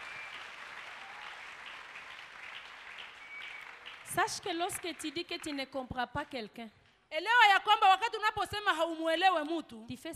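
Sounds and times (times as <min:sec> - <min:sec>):
congregation applauding at a church service: 0:00.0 - 0:05.6
speech: 0:04.2 - 0:10.1.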